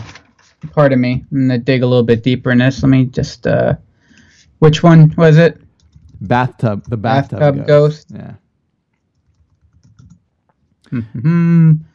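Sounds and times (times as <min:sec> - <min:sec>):
speech: 0:00.7 - 0:03.8, 0:04.6 - 0:05.6, 0:06.2 - 0:08.4, 0:10.9 - 0:11.9
typing on a computer keyboard: 0:05.7 - 0:07.0, 0:08.9 - 0:10.3.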